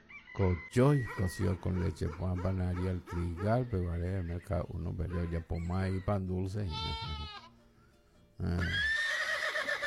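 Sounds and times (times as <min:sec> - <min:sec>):
speech: 0:00.4 - 0:07.4, 0:08.4 - 0:08.9
horse neighing: 0:08.4 - 0:09.8.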